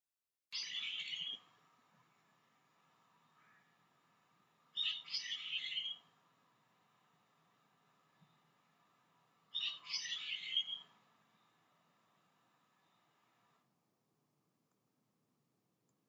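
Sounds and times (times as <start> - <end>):
Japanese bulbul: 0.5 - 1.5, 4.8 - 6.1, 9.5 - 11.5.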